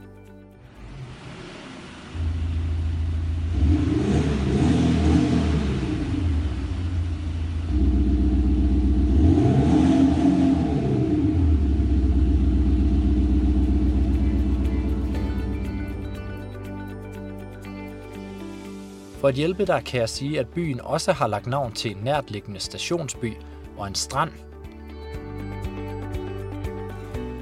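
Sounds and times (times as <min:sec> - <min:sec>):
large Audi car engine revving: 0:00.6 - 0:16.7
speech: 0:19.3 - 0:24.5.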